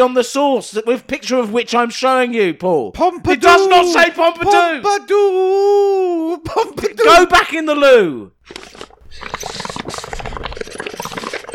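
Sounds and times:
speech: 0.0s - 9.4s
bubbles blown through a straw into coffee: 8.4s - 11.5s.

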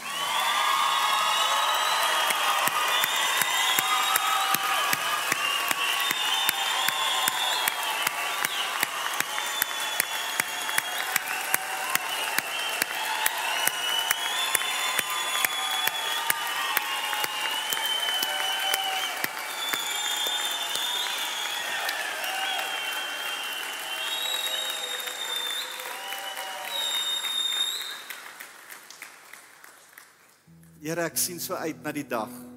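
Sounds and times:
large crowd shouting and cheering: 0.0s - 27.9s
shrill whistles from a crowd: 0.0s - 28.3s
large crowd clapping: 0.0s - 31.1s
speech: 30.9s - 32.5s.

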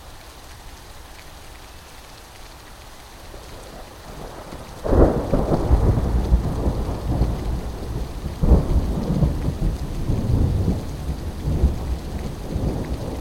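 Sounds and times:
heavy rain in a thunderstorm: 0.0s - 13.2s
loud deep rolling thunder: 4.1s - 13.2s.

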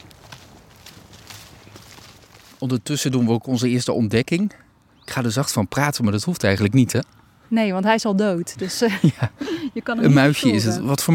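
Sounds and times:
footsteps walking outdoors with soft crunching taps: 0.0s - 2.9s
steady outdoor noise: 0.0s - 11.1s
speech: 2.6s - 11.1s
laughter: 8.6s - 9.8s.

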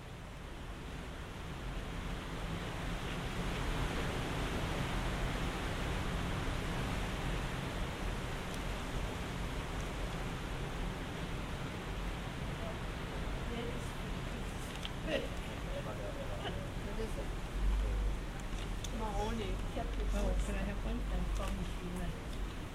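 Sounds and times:
low rumbling background noise at a Buddhist monastery: 0.0s - 22.7s
voices murmuring at a Buddhist monastery: 12.5s - 22.3s.

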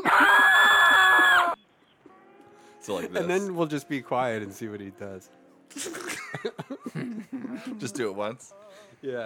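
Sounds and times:
loud sustained high-pitched scream sound effect: 0.0s - 1.6s
speech: 2.9s - 9.2s.

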